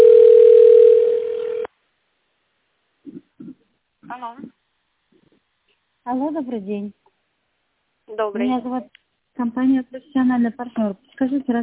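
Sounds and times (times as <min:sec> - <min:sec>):
loud low-pitched telephone ringback tone while waiting for connection: 0:00.0 - 0:01.7
speech: 0:04.2 - 0:04.6, 0:06.1 - 0:07.0, 0:08.2 - 0:11.6.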